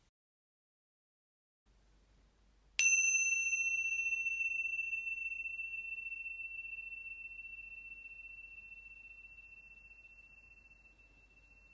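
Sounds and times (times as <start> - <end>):
single bell struck once, ringing out: 2.8 - 11.7.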